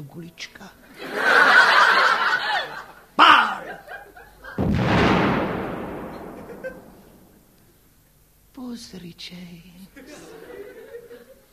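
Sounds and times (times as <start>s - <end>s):
speech: 0.0s - 1.3s, 8.8s - 10.3s
laughter: 0.9s - 4.6s, 6.2s - 7.1s, 9.9s - 11.5s
person snickering: 3.2s - 4.6s, 6.4s - 7.0s
cannon firing: 4.6s - 7.5s
sharp crack: 4.6s - 7.7s.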